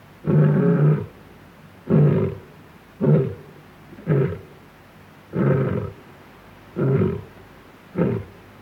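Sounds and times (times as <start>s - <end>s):
male lion roaring: 0.2s - 1.1s, 1.9s - 3.4s, 4.0s - 4.5s, 5.3s - 6.0s, 6.8s - 7.3s, 8.0s - 8.3s.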